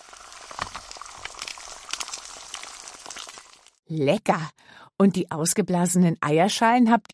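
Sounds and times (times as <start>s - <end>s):
scrambled eggs sizzling and crackling in a hot pan: 0.0s - 3.8s
speech: 3.9s - 7.1s.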